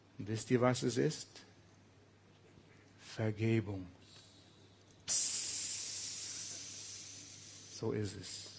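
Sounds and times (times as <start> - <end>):
speech: 0.2 - 1.5, 3.2 - 4.0, 7.8 - 8.5
steam hissing from a pressure valve: 5.1 - 8.5.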